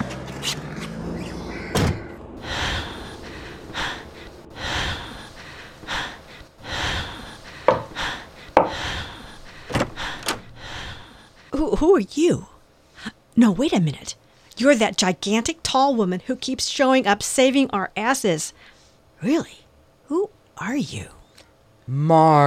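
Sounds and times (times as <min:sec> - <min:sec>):
breathy gasps: 0:02.4 - 0:11.5
sharp heavy thuds: 0:07.6 - 0:10.6
speech: 0:11.8 - 0:12.5, 0:13.4 - 0:21.2, 0:21.9 - 0:22.4.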